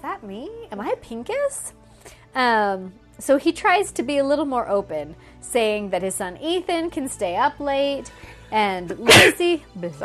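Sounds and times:
speech: 0:00.2 - 0:10.0
sneeze: 0:09.0 - 0:09.5.

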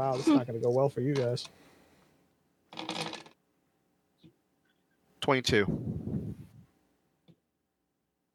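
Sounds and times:
speech: 0:00.0 - 0:01.7, 0:05.2 - 0:06.0
two dice clattering across a hard tabletop during a tabletop game: 0:02.7 - 0:03.4.

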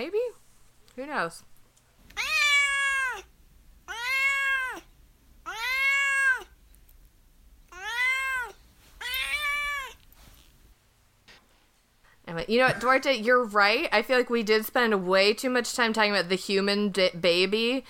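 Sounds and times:
speech: 0:01.0 - 0:01.5, 0:12.5 - 0:17.8
cat meowing: 0:02.1 - 0:03.3, 0:03.9 - 0:06.6, 0:07.7 - 0:10.0.

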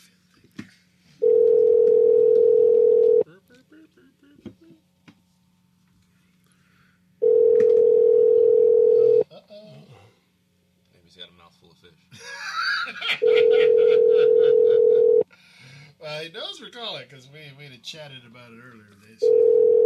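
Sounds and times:
electronic ringback tones on an outgoing phone call: 0:01.2 - 0:03.2, 0:07.2 - 0:09.2, 0:13.2 - 0:15.2, 0:19.2 - 0:19.8
laughter: 0:03.2 - 0:04.8, 0:12.1 - 0:15.2
speech: 0:16.8 - 0:19.8.

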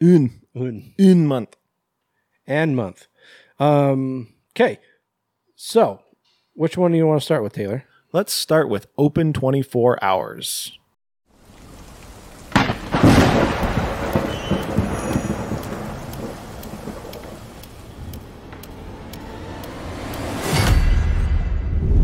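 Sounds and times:
speech: 0:00.0 - 0:01.6, 0:02.5 - 0:04.9, 0:05.6 - 0:06.0, 0:06.6 - 0:10.8
steady rain pouring: 0:11.3 - 0:20.4
loud thunder cracking and rumbling: 0:12.5 - 0:18.2, 0:20.4 - 0:22.0.

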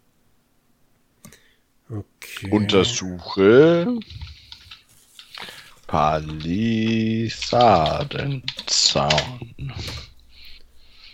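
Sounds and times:
speech: 0:01.9 - 0:04.3, 0:05.9 - 0:10.0
typing on a computer keyboard: 0:04.0 - 0:10.6.

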